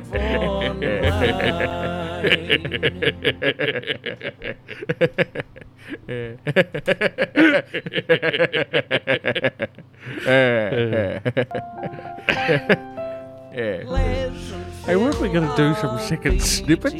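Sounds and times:
people chuckling: 0.0s - 13.3s
speech: 0.1s - 16.9s.

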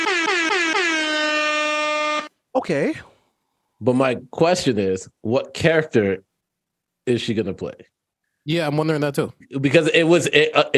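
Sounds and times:
air horn blasts: 0.0s - 2.4s
speech: 2.6s - 3.1s, 3.8s - 6.3s, 7.1s - 10.7s.

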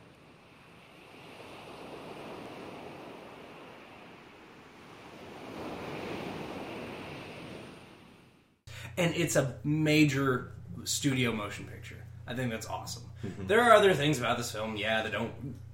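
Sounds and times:
ocean surf washing against the shore: 0.0s - 8.6s
speech: 8.8s - 15.6s.

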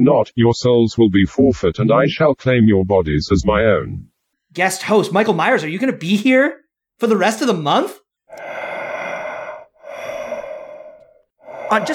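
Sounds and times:
speech: 0.0s - 8.6s, 11.7s - 11.9s
heavy rasping breathing of a masked killer: 8.3s - 11.9s.

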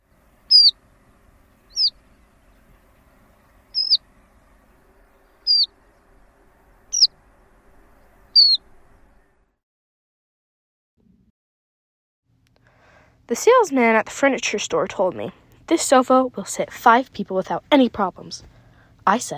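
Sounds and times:
horned lark buzzy downslurred alarm calls: 0.5s - 0.8s, 1.6s - 2.6s, 3.6s - 4.1s, 5.2s - 5.8s, 6.9s - 7.2s, 8.2s - 8.7s
speech: 13.3s - 19.3s.

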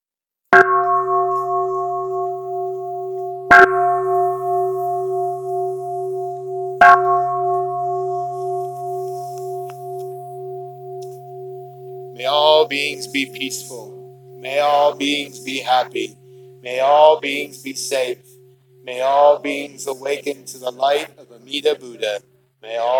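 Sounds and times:
meditation bell struck to conclude a Buddhist gathering: 0.6s - 22.9s
speech: 12.7s - 18.3s, 18.9s - 22.9s.

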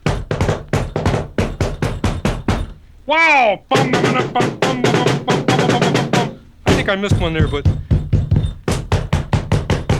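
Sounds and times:
person knocking on a door with knuckles: 0.0s - 2.8s, 3.7s - 9.9s
speech: 3.1s - 4.9s, 6.9s - 7.8s.

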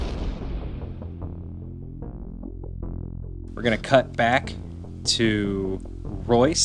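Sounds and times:
deep heavy explosion booming through the street: 0.0s - 1.4s
speech: 3.6s - 6.6s.

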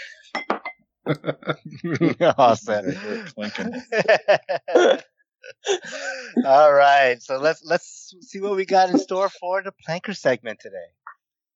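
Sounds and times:
big wine glass clinking with a bright ringing tone: 0.3s - 0.8s
speech: 1.0s - 5.0s, 5.6s - 11.0s
laughter: 1.1s - 7.0s, 8.7s - 9.5s.

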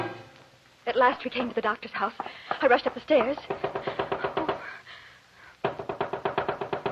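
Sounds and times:
speech: 1.0s - 3.9s
rapid insistent knocking on the door of a doctor's house: 2.5s - 4.7s, 5.6s - 6.9s.

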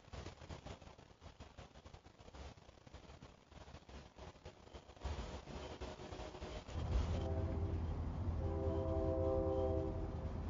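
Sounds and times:
train rumbling past: 3.9s - 10.4s
train horn blaring: 6.1s - 10.4s.

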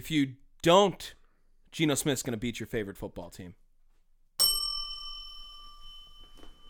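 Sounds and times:
speech: 0.0s - 3.6s
bright metallic bell strike ringing: 4.4s - 6.6s.

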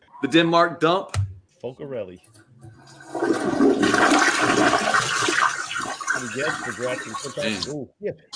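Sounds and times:
speech: 0.2s - 2.4s, 6.2s - 8.3s
vacuum-style airplane toilet flush on a flight to Denmark: 2.7s - 7.4s.

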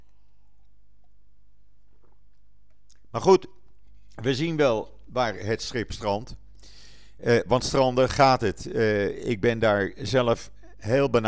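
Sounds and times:
person taking a sip of water: 0.0s - 4.2s
soft wet mouth clicks: 1.8s - 4.2s
speech: 3.1s - 3.6s, 4.2s - 11.2s.

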